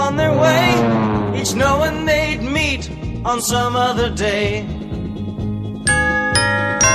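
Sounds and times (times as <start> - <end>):
low sustained musical backing: 0.0 - 6.9
speech: 1.4 - 4.8
Christmas bells chiming: 5.9 - 6.9.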